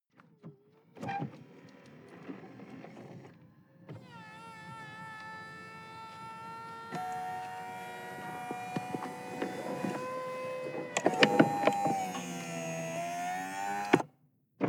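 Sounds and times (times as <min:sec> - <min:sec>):
sports car convertible top closing heard from interior: 0:04.0 - 0:14.0.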